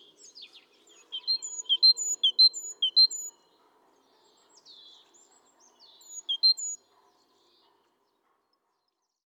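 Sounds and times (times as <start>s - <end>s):
great tit Parus major calling with sharp high notes and thin whistles: 1.2s - 3.3s, 6.1s - 6.8s.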